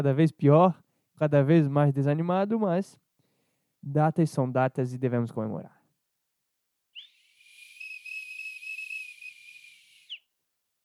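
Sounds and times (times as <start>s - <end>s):
speech: 0.0s - 3.0s, 3.8s - 5.8s
nasal-sounding whistle blast: 7.0s - 10.2s.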